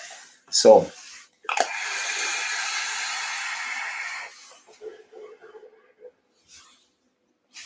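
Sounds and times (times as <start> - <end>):
vape coil firing at 150 watts: 1.5 - 4.6.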